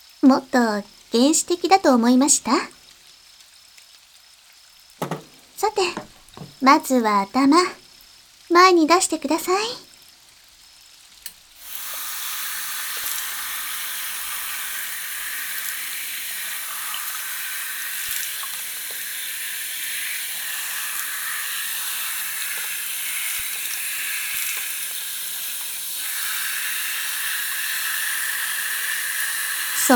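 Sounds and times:
shower water running while hair is washed: 0.0s - 29.9s
speech: 0.2s - 2.8s, 5.6s - 7.8s, 8.5s - 9.9s
knock: 5.0s - 6.6s.

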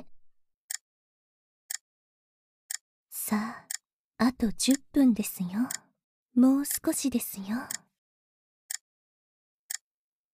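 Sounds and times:
speech: 3.3s - 3.6s, 4.2s - 5.8s, 6.4s - 7.8s
clock ticking: 3.6s - 5.9s, 6.6s - 7.9s, 9.7s - 9.9s.

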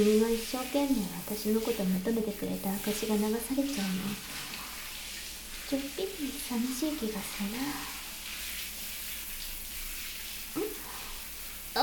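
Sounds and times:
speech: 0.0s - 4.6s, 5.7s - 8.0s
shower water running: 0.0s - 11.8s.

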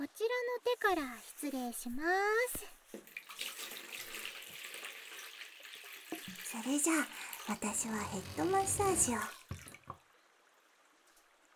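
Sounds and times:
speech: 0.4s - 3.2s, 6.5s - 9.4s
hot spring water splashing and trickling during a hand and foot massage: 2.9s - 11.5s.

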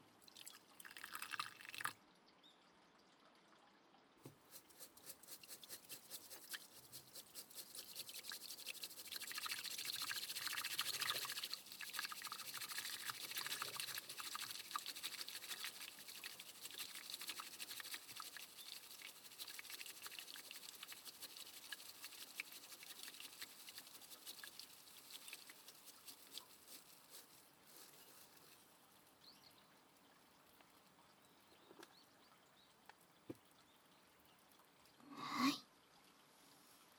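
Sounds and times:
hot water poured into a pot to brew tea: 0.2s - 2.0s, 4.4s - 31.9s.

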